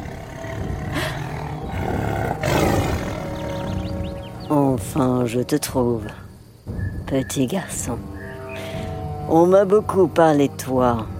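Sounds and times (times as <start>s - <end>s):
tiger roaring: 0.0s - 3.9s
speech: 4.8s - 6.2s, 7.1s - 8.1s, 9.3s - 11.1s.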